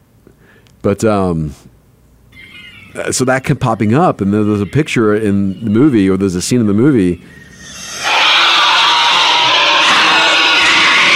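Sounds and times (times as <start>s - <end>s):
speech: 0.8s - 1.7s, 2.9s - 7.8s
creepy scream from a movie scene: 7.2s - 11.1s.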